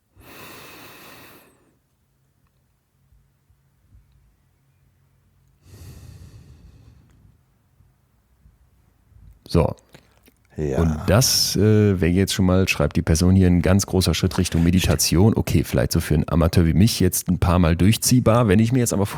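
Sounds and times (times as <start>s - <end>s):
slow deep breathing in and out with eyes closed: 0.1s - 1.9s, 5.6s - 7.4s
speech: 9.5s - 10.0s, 10.6s - 19.1s.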